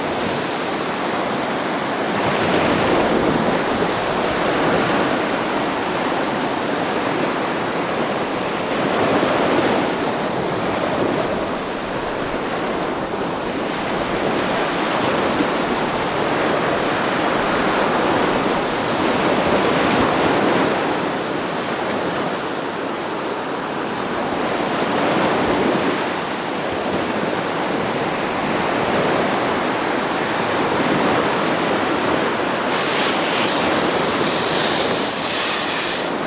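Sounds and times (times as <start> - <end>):
waves washing over a shore: 0.0 - 36.2
brighter crisp sputter: 32.6 - 36.2.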